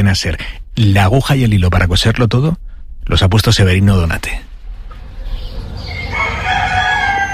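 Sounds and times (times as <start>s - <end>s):
speech: 0.0s - 4.5s
faint crowing of other birds: 4.9s - 7.3s
low farmyard rumble: 4.9s - 7.3s
rooster crowing loudly: 5.4s - 7.3s.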